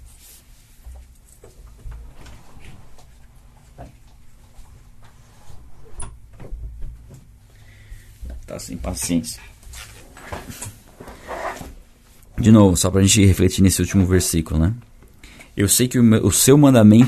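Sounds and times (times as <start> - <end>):
quiet hum: 0.0 - 17.0
door being opened for a cat: 1.4 - 7.4
speech: 8.5 - 9.5, 12.4 - 14.9, 15.6 - 17.0.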